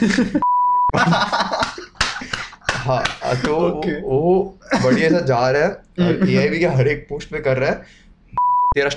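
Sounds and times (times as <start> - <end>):
speech: 0.0 - 1.5, 2.9 - 8.0, 8.7 - 8.9
snickering laughter: 0.0 - 3.6
censor beep: 0.4 - 0.9, 8.4 - 8.8
lively voices: 1.0 - 7.9.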